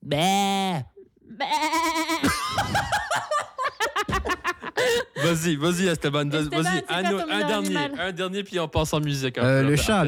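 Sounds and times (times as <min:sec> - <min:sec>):
person imitating a goat with a loud wavering bleat: 0:00.0 - 0:02.2
speech: 0:00.1 - 0:02.4, 0:05.2 - 0:10.0
bursts of laughter: 0:01.5 - 0:05.4
lively chatter: 0:06.0 - 0:08.2.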